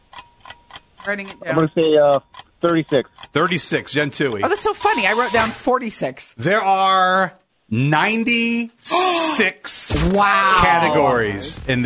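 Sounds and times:
countdown timer ticking: 0.0s - 5.6s
speech: 1.0s - 11.8s.

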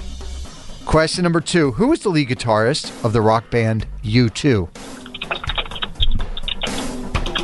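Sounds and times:
speech: 0.9s - 4.9s
rapid clicking taps like keyboard typing: 5.0s - 7.4s.

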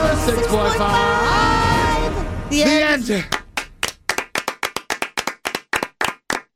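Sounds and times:
speech: 0.2s - 1.6s, 2.5s - 3.4s
single person clapping hands: 3.2s - 6.5s.

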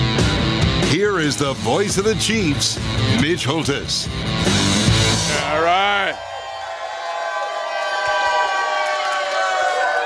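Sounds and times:
speech: 1.0s - 4.6s, 5.5s - 6.3s
large sellout live crowd cheering and roaring at a championship celebration: 5.1s - 10.0s.

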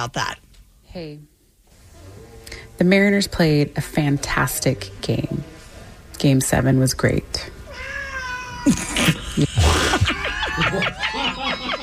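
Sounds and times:
speech: 0.0s - 1.3s, 2.8s - 5.5s, 6.2s - 7.6s, 8.6s - 9.8s
faint hum: 0.0s - 11.8s
cat meowing and yowling: 7.7s - 8.7s
laughter: 8.7s - 11.8s.

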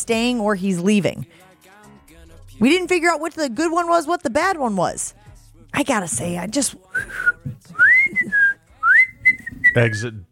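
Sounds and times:
speech: 0.0s - 1.5s, 2.6s - 8.4s, 9.8s - 10.2s
person whistling: 6.9s - 10.2s.

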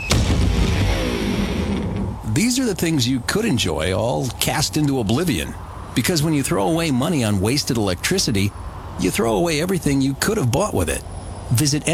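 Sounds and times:
electric guitar smashing on impact: 0.0s - 2.2s
speech: 2.4s - 11.9s.

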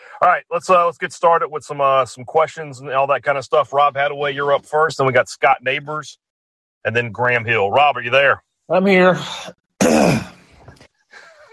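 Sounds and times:
speech: 0.2s - 6.2s, 6.8s - 10.3s
throat clearing: 9.8s - 10.8s.

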